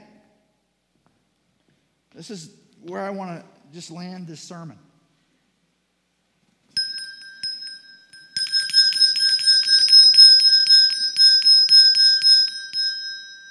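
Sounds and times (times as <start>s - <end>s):
speech: 2.2s - 4.9s
handbell rung by a charity kettle in the Christmas season: 6.8s - 13.4s.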